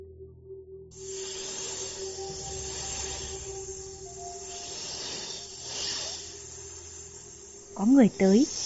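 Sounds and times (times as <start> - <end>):
low hum: 0.0 - 8.6
green snake hissing and rustling as it crawls in: 1.0 - 8.6
speech: 7.8 - 8.6.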